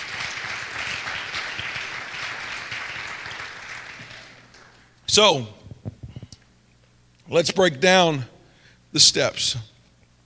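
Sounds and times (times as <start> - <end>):
audience clapping: 0.0 - 4.9
speech: 5.2 - 5.6, 7.3 - 8.3, 8.9 - 9.7.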